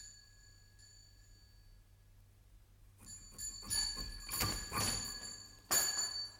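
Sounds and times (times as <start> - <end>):
pull-style house doorbell jangling: 3.4 - 6.3.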